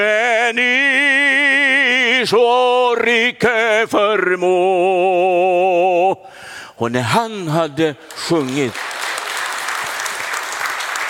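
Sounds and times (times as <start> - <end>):
speech: 0.0 - 1.4, 2.1 - 6.2, 6.8 - 8.9
crowd applauding after a song: 8.0 - 11.0.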